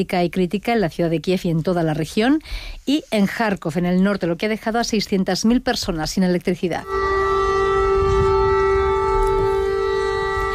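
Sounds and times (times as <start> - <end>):
speech: 0.0 - 7.1
air raid siren wailing during an attack on the Ukrainian capital: 6.8 - 10.5.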